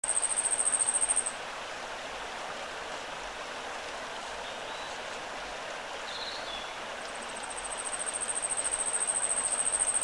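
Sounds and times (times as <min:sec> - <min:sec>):
Asian Stubtail song of very high thin rapid ticking notes: 0:00.0 - 0:01.4, 0:04.1 - 0:05.2, 0:06.1 - 0:10.0
mountain stream rushing near Takao Japan: 0:00.0 - 0:10.0.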